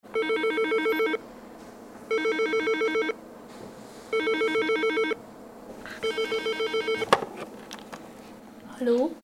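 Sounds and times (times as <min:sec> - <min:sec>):
telephone: 0:00.2 - 0:01.2, 0:02.1 - 0:03.2, 0:04.2 - 0:05.2, 0:06.0 - 0:07.1.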